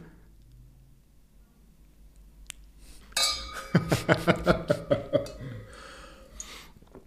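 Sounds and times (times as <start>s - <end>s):
wine glasses clinking in a toast: 3.2s - 4.0s
laughter: 3.6s - 5.7s
speech: 3.7s - 4.8s.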